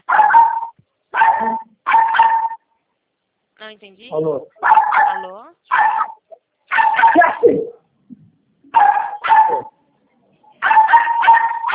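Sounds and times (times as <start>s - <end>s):
female dog barking and whimpering: 0.0s - 2.6s, 4.6s - 7.8s, 8.7s - 9.8s, 10.6s - 11.7s
speech: 3.7s - 5.9s.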